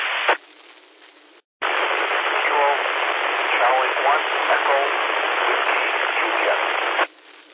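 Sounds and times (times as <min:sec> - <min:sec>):
thick hissy radio static: 0:00.0 - 0:00.4, 0:01.6 - 0:07.5
faint garbled voice through radio: 0:01.6 - 0:07.1.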